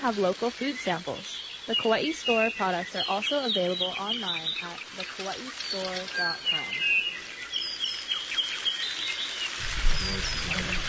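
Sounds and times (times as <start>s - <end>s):
speech: 0.0s - 6.9s, 10.0s - 10.8s
Hawaiian forest birds calling and chirping: 0.0s - 10.8s
soft hiss: 0.0s - 10.8s
low rumble: 9.6s - 10.8s.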